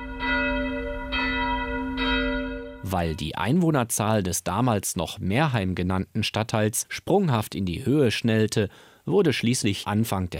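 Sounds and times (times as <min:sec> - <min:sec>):
church bells of a neo-Gothic church ringing: 0:00.0 - 0:03.4
speech: 0:02.9 - 0:10.3.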